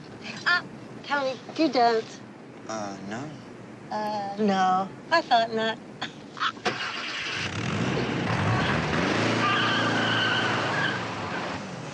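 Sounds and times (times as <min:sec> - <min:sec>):
speech: 0:01.1 - 0:06.8
car tires skidding and screeching: 0:06.6 - 0:11.9
car engine revving hard while driving off: 0:06.7 - 0:11.9.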